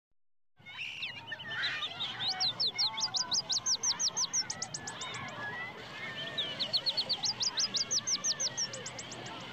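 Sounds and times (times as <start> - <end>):
background birds: 0.6 - 9.5
children playing outdoors: 0.6 - 9.5.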